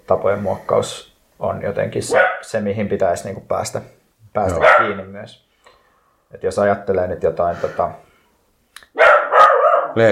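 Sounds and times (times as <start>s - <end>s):
speech: 0.1s - 5.4s, 6.3s - 8.0s
dog barking: 2.1s - 2.5s, 4.5s - 5.1s, 8.9s - 10.0s.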